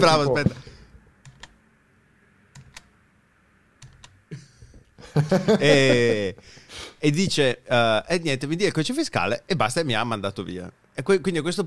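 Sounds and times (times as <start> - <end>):
speech: 0.0 - 0.7, 5.2 - 11.6
typing on a computer keyboard: 1.2 - 1.6, 2.5 - 2.9, 3.8 - 4.2
laughter: 4.3 - 6.4.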